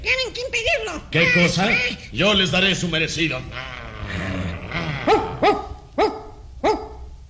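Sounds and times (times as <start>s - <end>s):
speech: 1.0s - 4.2s
low growl or rumble: 3.4s - 5.5s
dog barking: 5.0s - 7.1s.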